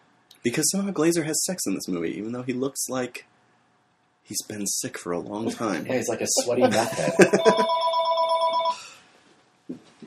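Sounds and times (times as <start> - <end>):
speech: 0.4 - 3.4, 4.3 - 7.8
laughter: 5.5 - 8.0
telephone ringing with electronic trill: 6.9 - 8.8.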